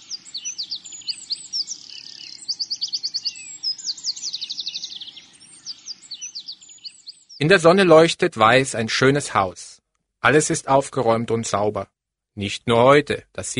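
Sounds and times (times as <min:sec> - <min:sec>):
birds singing a morning chorus: 0:00.0 - 0:08.2
speech: 0:07.4 - 0:09.6, 0:10.2 - 0:13.5.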